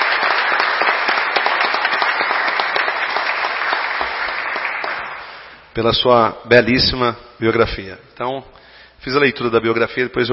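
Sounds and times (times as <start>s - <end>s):
audience applause at a ceremony in a municipal council chamber: 0.0s - 5.6s
speech: 5.8s - 10.3s.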